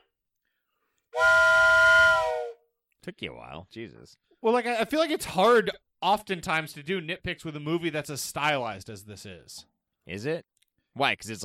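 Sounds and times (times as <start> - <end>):
whistle blast: 1.2 - 2.6
speech: 3.1 - 11.4.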